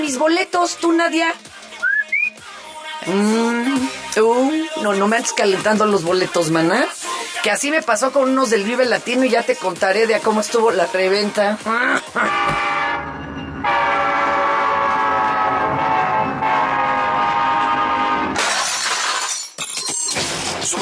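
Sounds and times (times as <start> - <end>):
speech: 0.1 - 1.6, 3.0 - 12.6
train horn blast: 12.2 - 18.4
clattering and crashing: 18.4 - 20.7.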